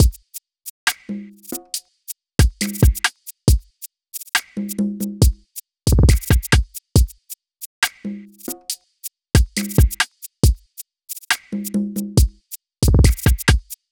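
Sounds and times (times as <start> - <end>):
Afrodrill drum loop at 138 BPM: 0.0 - 0.2, 2.4 - 3.6, 4.3 - 7.2, 9.4 - 10.6, 12.0 - 13.8.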